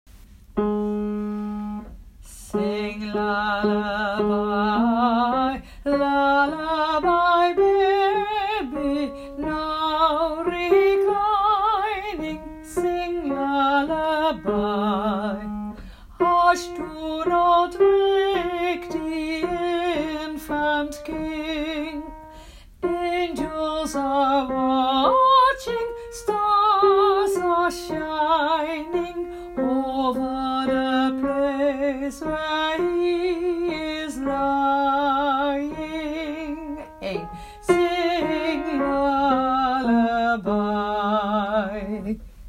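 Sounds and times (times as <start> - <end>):
alto part of a carol: 0.5 - 42.4.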